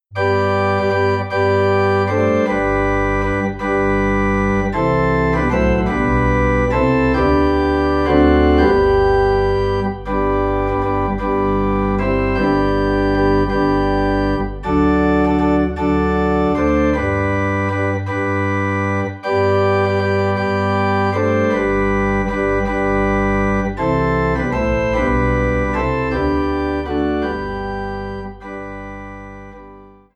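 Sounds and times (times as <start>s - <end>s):
organ playing in G: 0.1s - 30.1s.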